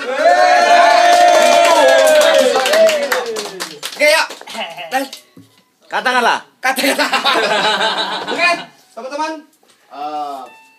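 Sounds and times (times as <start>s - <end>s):
crowd cheering and whooping: 0.0s - 3.8s
crowd clapping for friends who have just performed: 0.6s - 5.2s
speech: 5.9s - 10.6s
laughter: 6.8s - 8.7s.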